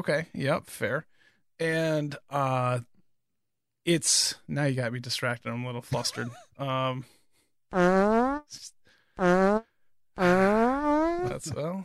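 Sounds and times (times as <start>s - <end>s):
speech: 0.0s - 2.9s, 3.9s - 11.8s
voice imitating a fart: 7.8s - 8.5s, 10.2s - 11.4s.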